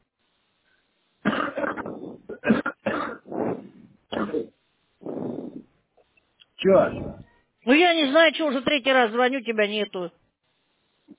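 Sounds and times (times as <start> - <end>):
harsh coughing: 1.2 - 5.6
speech: 6.7 - 10.2.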